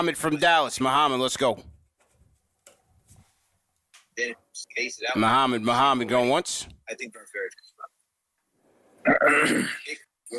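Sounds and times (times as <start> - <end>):
speech: 0.0 - 1.7, 4.2 - 7.9, 9.0 - 10.3
man clearing his throat on phone line: 9.1 - 10.0.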